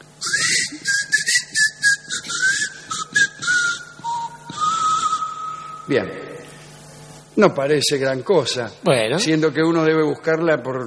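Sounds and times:
person whistling a wavering melody with sliding pitch: 0:00.2 - 0:05.9
speech: 0:05.9 - 0:06.2, 0:07.4 - 0:10.8.

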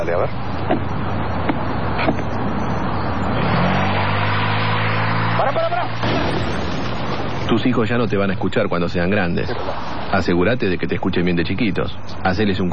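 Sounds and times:
speech: 0:00.0 - 0:00.9, 0:07.5 - 0:12.7
steady broadband road noise: 0:00.0 - 0:12.7
car engine pulling away in first gear: 0:03.3 - 0:07.7.

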